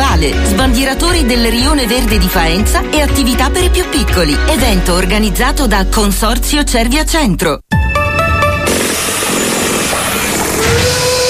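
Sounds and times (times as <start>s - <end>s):
speech: 0.2s - 7.7s
concrete mixer at a construction site: 8.7s - 11.2s
power tools running at a construction site: 8.7s - 11.2s
whining engine tone: 8.7s - 11.2s.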